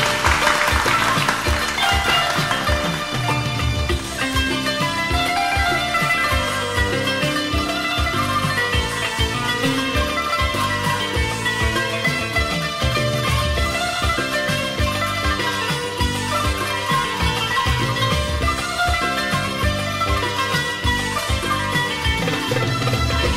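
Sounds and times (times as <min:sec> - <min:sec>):
crowd clapping: 0:00.0 - 0:04.0
instrumental music with a pulsing beat: 0:00.0 - 0:23.3.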